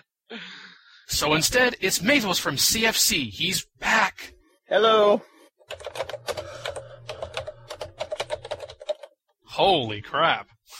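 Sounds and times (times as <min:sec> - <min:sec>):
speech: 0:01.1 - 0:04.0, 0:04.7 - 0:05.3, 0:09.6 - 0:10.5
loud computer keyboard typing: 0:05.6 - 0:09.2.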